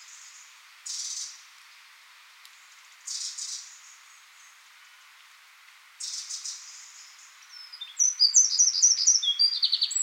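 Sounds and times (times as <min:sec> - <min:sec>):
steady background hiss: 0:00.0 - 0:10.0
Eurasian wren Troglodytes troglodytes giving buzzy calls and trilling song: 0:07.5 - 0:10.0.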